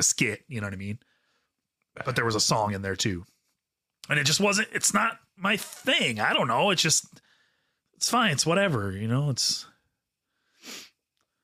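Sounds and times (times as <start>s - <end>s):
speech: 0.0s - 1.1s, 2.0s - 3.4s, 4.0s - 7.3s, 8.0s - 9.7s
person sniffing hard through the nose while trying to sneeze: 10.5s - 11.0s.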